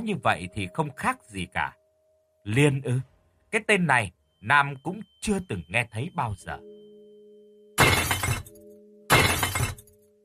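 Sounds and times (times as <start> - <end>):
speech: 0.0 - 1.8, 2.4 - 6.8
glass shattering inside a house: 7.8 - 10.0.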